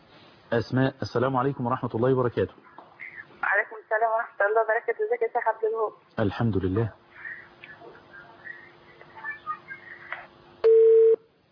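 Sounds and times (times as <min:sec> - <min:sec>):
speech: 0:00.5 - 0:02.7, 0:04.0 - 0:07.0
telephone line tone after a disconnected call: 0:10.6 - 0:11.2.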